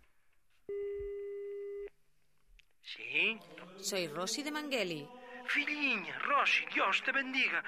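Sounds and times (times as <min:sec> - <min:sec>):
single steady telephone tone: 0:00.7 - 0:01.9
speech: 0:03.9 - 0:07.6.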